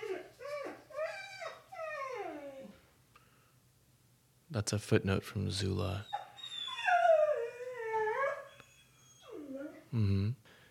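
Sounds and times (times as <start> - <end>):
dog at a house howling and whimpering: 0.0 - 2.8, 6.0 - 9.9
speech: 4.5 - 6.1, 10.0 - 10.5.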